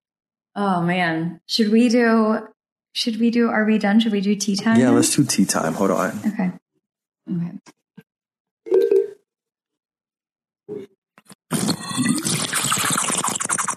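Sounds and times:
speech: 0:00.6 - 0:06.6, 0:07.3 - 0:07.8, 0:10.7 - 0:10.9
sipping water through a bottle straw: 0:11.2 - 0:13.7
rough broadband slurping gurgle through a bottle straw: 0:11.5 - 0:13.7.

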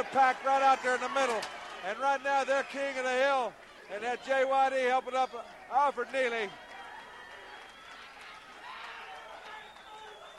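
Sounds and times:
speech: 0:00.0 - 0:06.6
large crowd roaring and cheering: 0:00.0 - 0:10.3
applause: 0:05.9 - 0:10.3.

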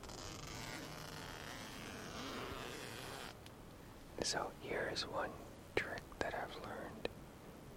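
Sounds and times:
tent zipper being drawn open: 0:00.0 - 0:03.4
speech: 0:04.2 - 0:07.0.

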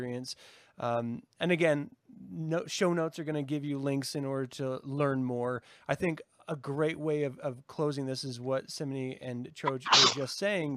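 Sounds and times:
speech: 0:00.0 - 0:10.7
sneeze: 0:09.7 - 0:10.3.

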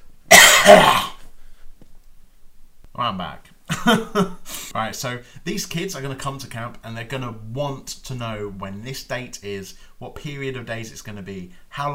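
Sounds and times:
person coughing: 0:00.3 - 0:01.3
speech: 0:00.7 - 0:01.0, 0:03.0 - 0:11.9.

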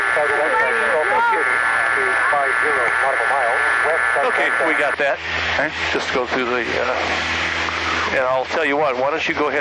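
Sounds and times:
tinny radio voice broadcast: 0:00.0 - 0:07.1
cockpit engine drone: 0:00.0 - 0:09.5
faint constant tone: 0:00.0 - 0:09.5
speech: 0:00.2 - 0:09.5.

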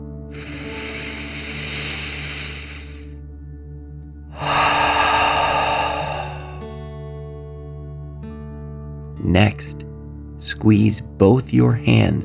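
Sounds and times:
deep breathing in and out during a relaxation exercise: 0:00.3 - 0:03.2, 0:04.3 - 0:07.0
speech: 0:09.3 - 0:09.8, 0:10.4 - 0:12.2.

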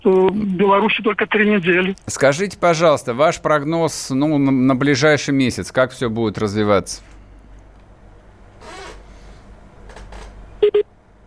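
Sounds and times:
faint garbled bursts of distorted IP telephony call audio: 0:00.0 - 0:02.0
speech: 0:00.0 - 0:07.1
two quick electronic beeps as an internet phone call drops: 0:10.6 - 0:10.8.

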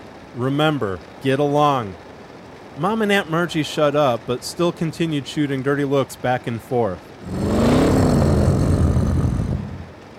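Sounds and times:
speech: 0:00.4 - 0:02.0, 0:02.8 - 0:07.5
car engine revving: 0:07.2 - 0:09.9.

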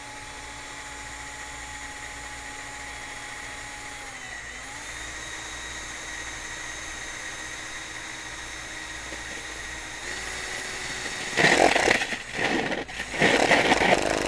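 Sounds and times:
power drill cutting hole in gourd: 0:00.0 - 0:14.2
steady mechanical whine: 0:07.9 - 0:14.2.

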